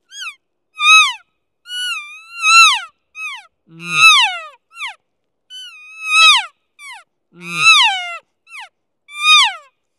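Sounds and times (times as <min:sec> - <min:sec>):
distressed elk calf calls: 0:02.4 - 0:05.0, 0:06.0 - 0:09.7.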